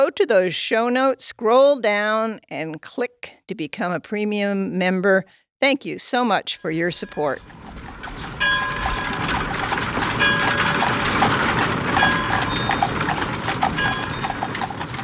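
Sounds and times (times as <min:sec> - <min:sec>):
speech: 0:00.0 - 0:07.8
horse hooves clip-clopping: 0:06.6 - 0:15.0
rolling buggy rattling and rumbling: 0:06.8 - 0:15.0.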